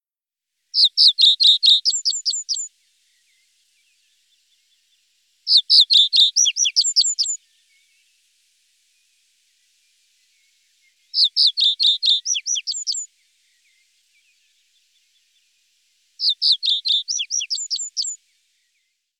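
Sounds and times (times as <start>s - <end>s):
common reed bunting chirping: 5.5s - 7.4s, 11.2s - 13.1s, 16.2s - 18.2s.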